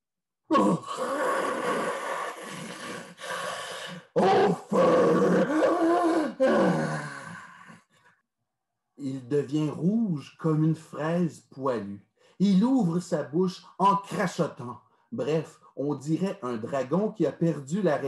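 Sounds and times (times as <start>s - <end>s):
speech: 0.5s - 1.1s, 9.5s - 18.0s
voice imitating a lion roaring: 0.5s - 7.8s.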